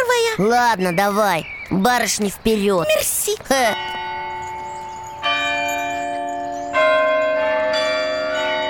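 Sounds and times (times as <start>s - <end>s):
speech: 0.4s - 4.0s
podzvonnye and zazvonnye church bells rung from a lever keyboard: 3.0s - 8.6s.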